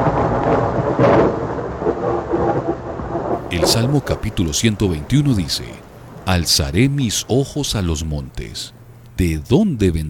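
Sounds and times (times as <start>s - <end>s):
low rolling rumble of thunder: 0.0s - 7.8s
steady hiss of rain: 0.0s - 10.0s
speech: 3.5s - 10.0s.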